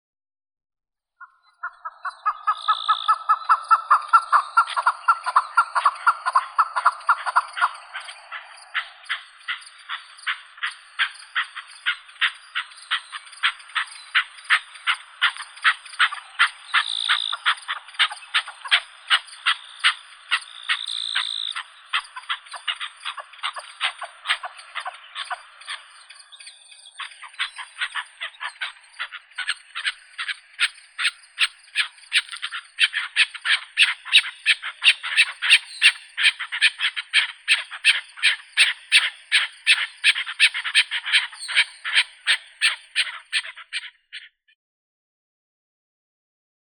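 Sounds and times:
chukar Alectoris chukar calling: 1.2 - 44.5.

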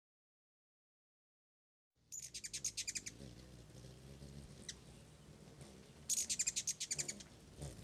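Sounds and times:
ruby-throated hummingbird chip calls: 2.1 - 7.8.

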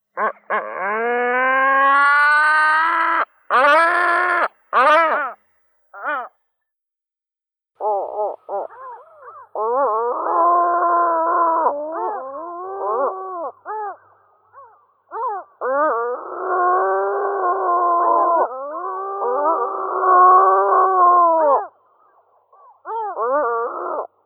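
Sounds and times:
great black-headed gull Larus ichthyaetus calling: 0.2 - 5.4, 7.8 - 21.7.

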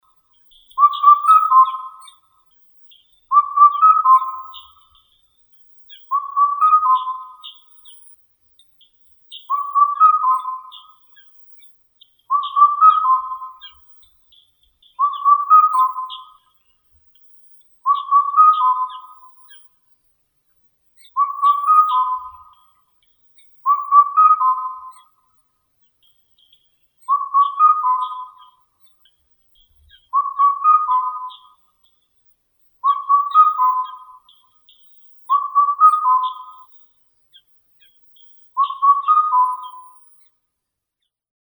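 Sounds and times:
Indian cuckoo Cuculus micropterus calling: 0.6 - 2.2, 3.3 - 5.0, 5.9 - 7.7, 9.4 - 11.3, 12.3 - 13.9, 15.0 - 16.5, 17.9 - 19.7, 21.0 - 22.8, 23.6 - 25.3, 27.0 - 29.0, 29.6 - 31.8, 32.8 - 40.1.

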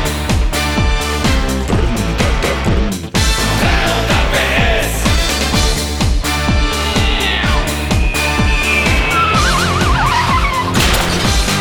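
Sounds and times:
steady pounding rhythmic beat: 0.0 - 11.6
car engine straining with a gearbox failure: 5.4 - 11.6
car tires screeching in a loud skid: 6.2 - 11.6.

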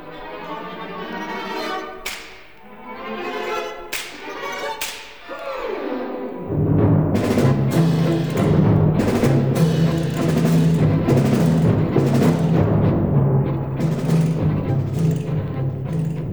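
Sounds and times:
sustained orchestral texture with percussion: 0.0 - 16.3
orchestral slapstick whip cracks: 2.0 - 2.6, 3.9 - 5.5.

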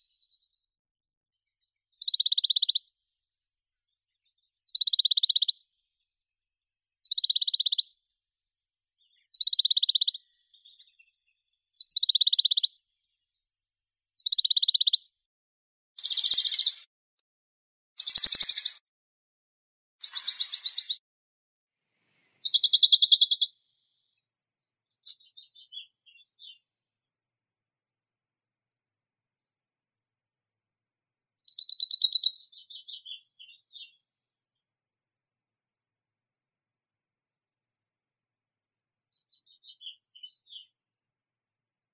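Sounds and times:
Phylloscopus bonelli warbler: 2.0 - 2.8, 4.7 - 5.6, 7.1 - 7.9, 9.4 - 10.2, 11.8 - 12.7, 14.2 - 15.0, 16.0 - 16.8, 18.0 - 18.8, 20.0 - 21.0, 22.5 - 23.5.

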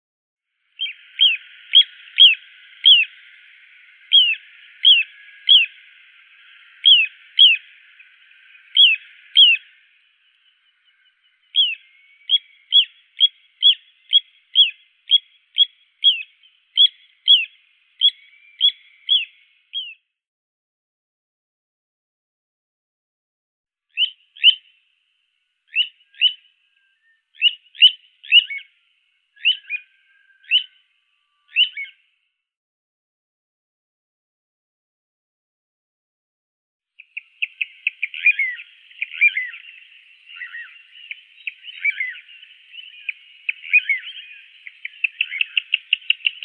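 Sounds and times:
little ringed plover Charadrius dubius calling: 0.8 - 19.9, 24.0 - 24.8, 25.7 - 32.0, 37.0 - 46.4.

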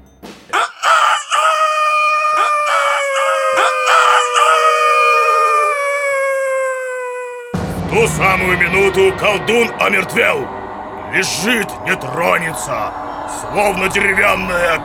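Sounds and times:
rooster crowing: 0.5 - 7.6
speech: 8.0 - 14.8.

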